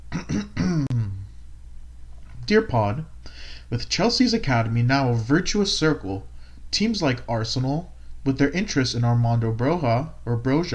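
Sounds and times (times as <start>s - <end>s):
throat clearing: 0.1s - 1.3s
speech: 2.5s - 10.7s.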